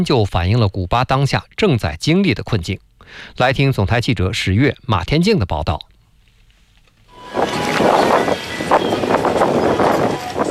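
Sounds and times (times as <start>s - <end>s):
speech: 0.0s - 5.9s
gusty wind: 7.1s - 10.4s
sea waves crashing against the seawall of the Malecón seafront boulevard in Havana, Cuba: 7.1s - 10.4s.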